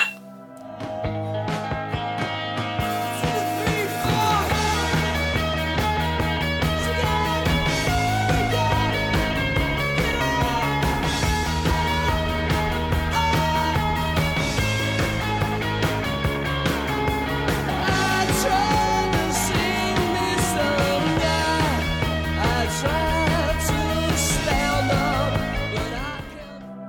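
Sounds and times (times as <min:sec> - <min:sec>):
early-eighties rock song with driving drums, electric guitars and bass: 0:00.0 - 0:26.6.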